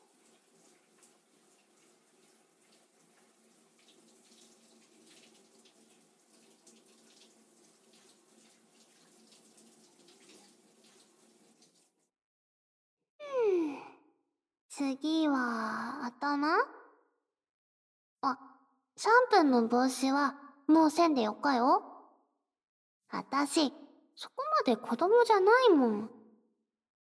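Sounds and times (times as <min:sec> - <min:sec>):
water pouring over someone in a bath: 0:00.0 - 0:12.0
speech: 0:14.8 - 0:16.8, 0:18.2 - 0:21.9, 0:23.1 - 0:26.2.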